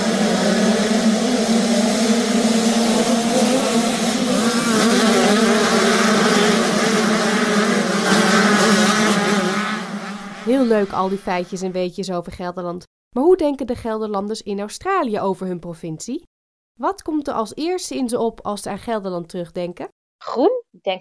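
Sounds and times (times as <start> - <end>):
motocross motorbikes racing at an outdoor festival in Lichtenvoorde: 0.0 - 11.1
speech: 10.7 - 20.9.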